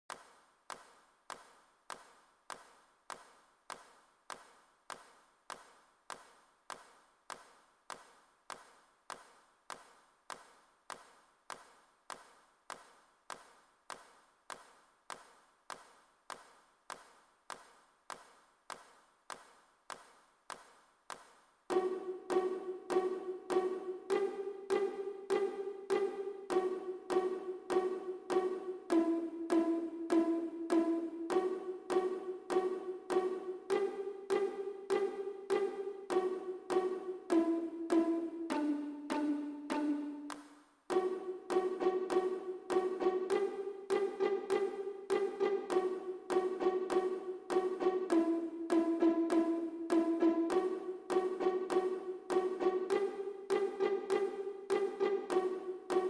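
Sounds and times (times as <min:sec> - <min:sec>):
clapping: 0:00.1 - 0:56.0
pizzicato violin and viola: 0:21.7 - 0:56.0.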